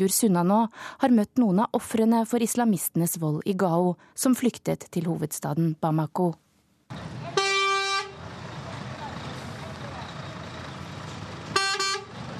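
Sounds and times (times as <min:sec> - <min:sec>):
speech: 0:00.0 - 0:07.0
busy morning rush-hour street traffic rumbling: 0:06.9 - 0:12.3
car horn honking in rush-hour traffic: 0:07.2 - 0:08.2, 0:11.5 - 0:12.2.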